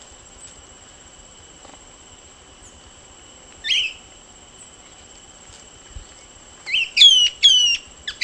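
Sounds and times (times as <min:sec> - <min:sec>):
Short-crested flycatcher Myiarchus ferox downslurred calls: 0:06.7 - 0:08.2.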